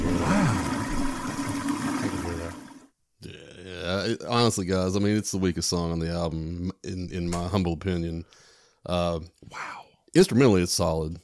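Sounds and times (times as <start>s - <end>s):
toilet flushing: 0.0s - 2.9s
speech: 4.1s - 11.2s.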